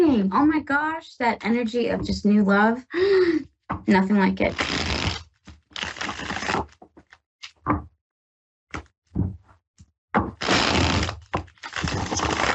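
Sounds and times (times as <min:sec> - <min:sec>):
speech: 0:00.0 - 0:05.2, 0:07.7 - 0:07.9
tarot cards being shuffled: 0:04.5 - 0:07.6, 0:10.2 - 0:12.5.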